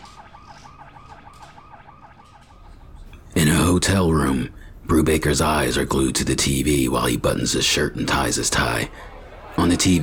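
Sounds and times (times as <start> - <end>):
rapid warbling electronic alarm echoing throughout a building: 0.0 - 2.8
speech: 3.4 - 10.0
laughter: 8.1 - 10.0.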